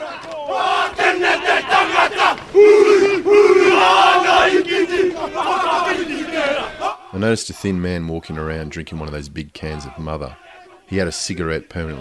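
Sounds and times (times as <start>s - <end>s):
crowd presence: 0.0s - 7.2s, 9.6s - 12.0s
group of men chanting and shouting in unison performing a haka: 0.0s - 7.4s, 8.6s - 12.0s
speech: 7.2s - 12.0s.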